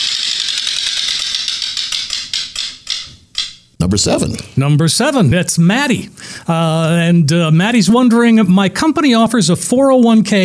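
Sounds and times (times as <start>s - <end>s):
prize wheel with 18 spaces spinning and clicking: 0.0s - 3.6s
speech: 3.9s - 10.4s.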